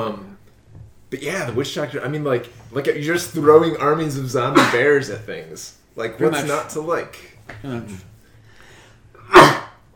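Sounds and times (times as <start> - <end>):
speech: 1.1 - 8.1
sneeze: 9.2 - 9.8.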